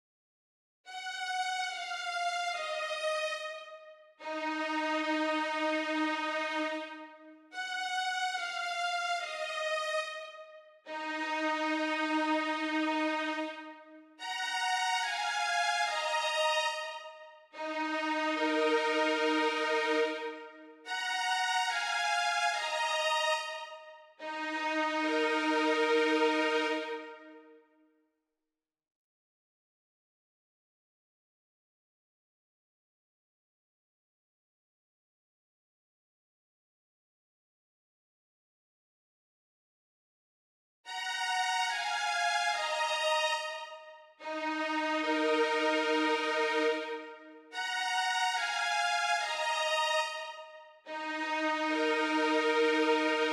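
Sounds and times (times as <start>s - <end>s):
violin in D sharp minor: 0.9s - 27.6s, 40.9s - 53.3s.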